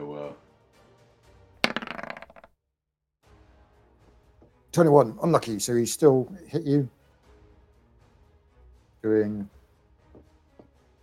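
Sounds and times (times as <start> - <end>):
dice clattering onto a hard tabletop during a game: 1.6 - 2.5
speech: 4.7 - 7.0, 9.0 - 9.6.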